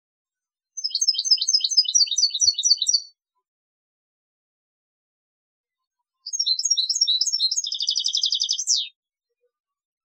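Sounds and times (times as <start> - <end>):
European goldfinch twittering song: 0.8 - 3.1, 6.3 - 8.9.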